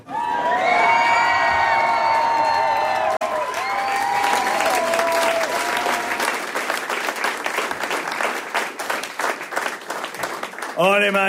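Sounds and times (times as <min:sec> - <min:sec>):
people whooping and cheering: 0:00.0 - 0:06.6
crowd applause: 0:00.0 - 0:11.2.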